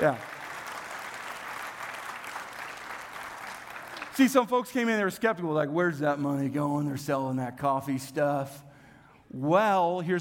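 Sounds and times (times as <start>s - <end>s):
speech: 0.0s - 0.3s, 4.2s - 8.7s, 9.3s - 10.2s
audience applause: 0.0s - 4.4s.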